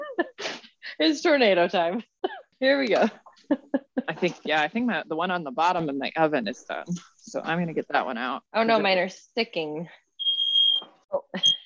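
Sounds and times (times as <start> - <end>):
speech: 1.0 - 10.0
smoke alarm beeping: 10.2 - 11.6.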